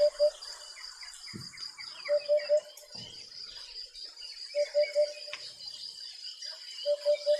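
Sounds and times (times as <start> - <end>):
Eurasian hoopoe calling oop-oop-oop: 0.0 - 0.5, 2.0 - 2.9, 4.5 - 5.4, 6.8 - 7.3
birds chirping: 0.0 - 7.3
insects: 0.0 - 7.3.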